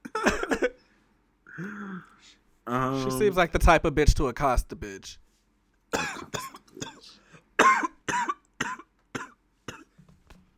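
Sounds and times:
harsh coughs and throat-clearing rasps: 0.0s - 0.8s, 5.9s - 10.0s
speech: 1.6s - 5.2s, 5.9s - 8.3s.

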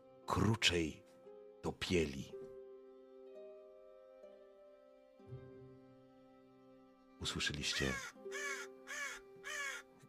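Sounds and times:
speech: 0.3s - 1.0s, 1.6s - 2.4s, 7.2s - 8.5s
raven cawing in a dead tree grove in a swamp: 7.7s - 9.9s.

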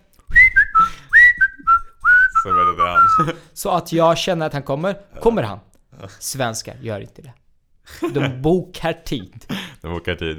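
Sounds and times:
person whistling a short tune: 0.3s - 3.3s
speech: 2.4s - 10.3s
laughter: 2.6s - 3.4s, 7.9s - 10.3s.

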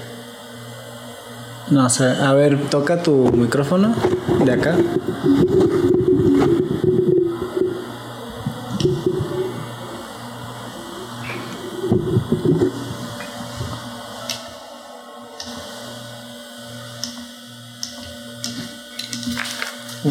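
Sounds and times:
faint whine: 0.0s - 18.8s
low mechanical hum: 0.0s - 20.0s
speech: 1.7s - 6.9s.

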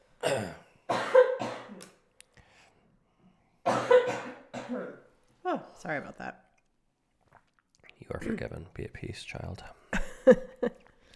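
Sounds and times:
speech: 0.2s - 0.6s, 5.8s - 6.5s, 8.0s - 10.8s
person coughing: 0.2s - 2.0s, 3.7s - 5.1s, 8.2s - 8.6s.

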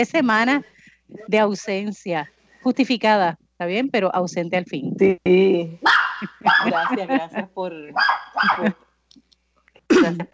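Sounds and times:
speech: 0.0s - 8.8s, 10.0s - 10.3s
small dog barking high-pitched: 5.8s - 7.1s, 8.0s - 8.7s
laughter: 6.2s - 8.8s, 9.9s - 10.3s.

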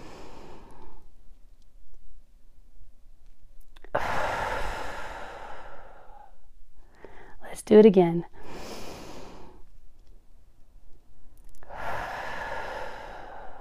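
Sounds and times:
deep breath in through the nose and out through the mouth: 0.0s - 1.2s, 3.8s - 7.4s, 8.3s - 9.9s, 11.5s - 13.5s
speech: 7.6s - 8.4s.

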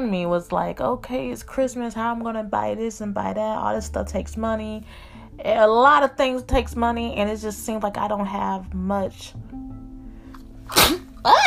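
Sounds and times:
speech: 0.1s - 9.5s, 10.7s - 11.4s
sneeze: 10.7s - 11.4s.

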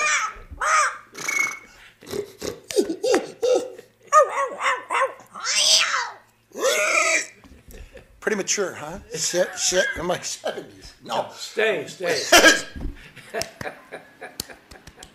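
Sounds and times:
person imitating dog barks and yaps: 0.0s - 1.5s, 2.4s - 7.4s
laughter: 7.4s - 8.2s, 9.1s - 10.4s, 12.1s - 15.1s
speech: 8.3s - 13.8s.

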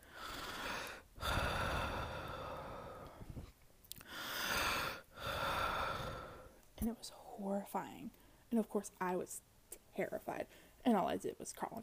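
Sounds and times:
voice imitating heavy breathing in one's ear: 0.0s - 6.6s
speech: 6.8s - 11.8s.

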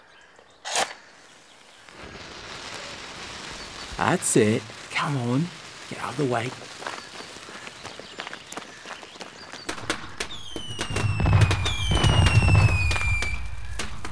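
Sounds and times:
fireworks cracking and popping: 1.8s - 14.0s
speech: 4.0s - 6.9s
fireworks deep booming rumble: 9.7s - 14.0s
fireworks high whistling tones: 9.7s - 14.0s.

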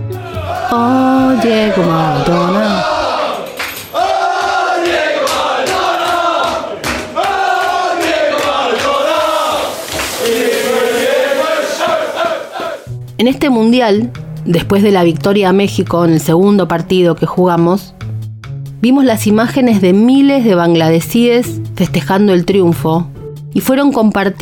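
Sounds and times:
large crowd of football fans singing a chant: 0.0s - 12.9s
football fans clapping: 0.2s - 12.9s
speech: 0.7s - 2.8s, 13.2s - 18.0s, 18.8s - 24.3s.

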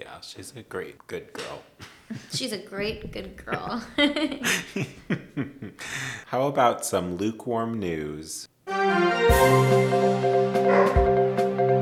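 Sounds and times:
speech: 0.2s - 11.3s
laughter: 3.4s - 6.0s
dogs barking while trying to break out: 10.6s - 11.2s.

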